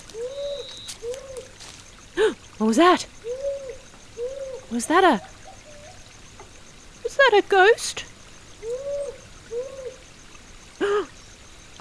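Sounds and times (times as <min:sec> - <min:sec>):
powerful owl hooting: 0:00.0 - 0:06.1, 0:08.6 - 0:10.0
speech: 0:02.6 - 0:03.2, 0:04.7 - 0:05.3, 0:07.3 - 0:08.1.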